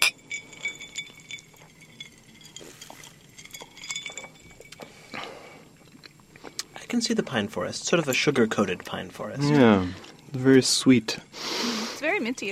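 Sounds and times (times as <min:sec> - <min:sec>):
glasses of minty alcoholic drink clinking in a toast: 0:00.0 - 0:10.3, 0:11.8 - 0:12.5
speech: 0:06.9 - 0:11.5, 0:12.2 - 0:12.5.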